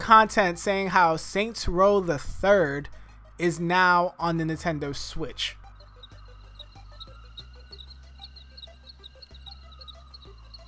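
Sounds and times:
speech: 0.1s - 5.6s
crickets chirping as a comedic sound effect: 5.6s - 10.6s
low frog-like croaks: 5.7s - 10.6s.

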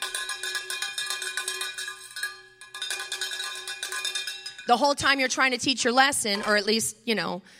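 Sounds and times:
cowbell clanging to announce garbage truck: 0.0s - 5.6s
speech: 4.7s - 7.5s.

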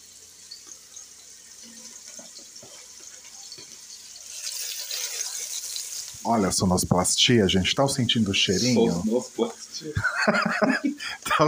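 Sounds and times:
frying sound effect of food sizzling in a pan: 0.0s - 11.4s
speech: 6.2s - 11.4s
laughter: 9.9s - 11.4s.

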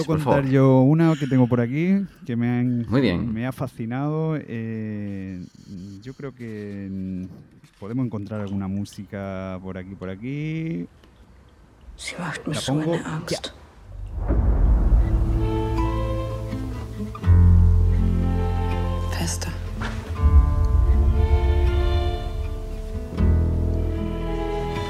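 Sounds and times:
speech: 0.0s - 11.0s, 12.0s - 13.6s, 19.3s - 19.6s
film soundtrack music with layered chords over deep bass: 13.9s - 24.8s.

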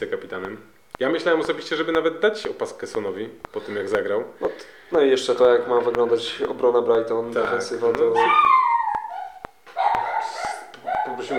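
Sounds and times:
speech: 0.0s - 8.6s
sharp clicks: 0.0s - 11.3s
guard dog yipping and whining: 8.2s - 11.3s.

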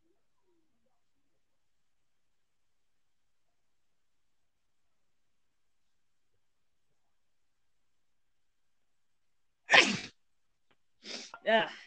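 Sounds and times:
sneeze: 9.7s - 10.2s
speech: 11.4s - 11.8s.

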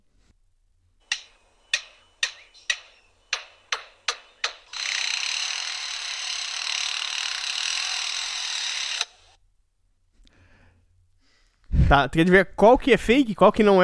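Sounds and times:
construction tool hammering clacks: 1.1s - 9.1s
construction tool rasping whir: 1.1s - 9.4s
speech: 11.9s - 13.8s.

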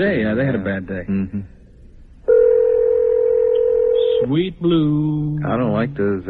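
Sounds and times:
speech: 0.0s - 1.6s, 4.2s - 6.2s
electronic telephone ringing tone on a phone line: 2.3s - 4.3s.

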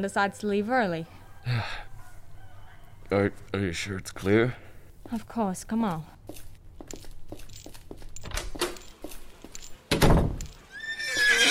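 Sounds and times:
speech: 0.0s - 1.9s, 3.1s - 6.5s
hooves clopping: 5.0s - 11.4s
loud, shrill horse whinny: 10.7s - 11.4s.

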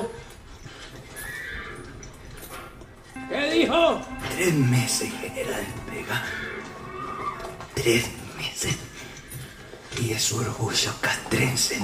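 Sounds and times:
horse whinnying: 1.1s - 2.1s
speech: 3.6s - 6.6s, 7.8s - 8.8s, 10.0s - 11.8s.

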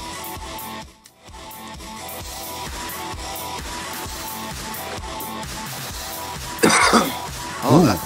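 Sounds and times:
person coughing: 6.6s - 7.3s
rough throaty vocal rasp: 6.6s - 7.3s.

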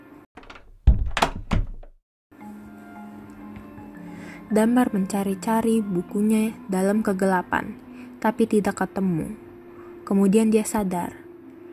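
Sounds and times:
door shutting with a heavy thud: 0.4s - 2.0s
quick rattling knocks: 0.4s - 2.0s
speech: 4.5s - 9.4s, 10.1s - 11.2s.

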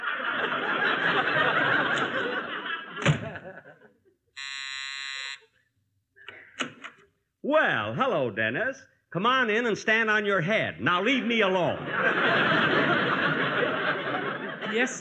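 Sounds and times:
laughter: 0.0s - 4.3s, 10.1s - 15.0s
electric doorbell buzzing at a front door: 4.4s - 5.5s
speech: 7.5s - 12.6s, 14.8s - 15.0s.

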